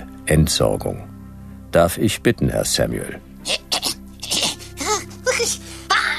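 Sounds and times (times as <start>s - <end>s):
speech: 0.3s - 1.1s, 1.7s - 3.8s
wavering vocal sounds: 3.4s - 6.1s
person sneezing: 3.5s - 6.1s.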